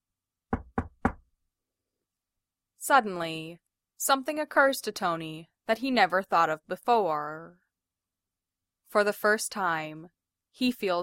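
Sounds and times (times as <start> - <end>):
firm knocks on a door: 0.5 - 1.3
speech: 2.9 - 7.6, 8.9 - 11.0.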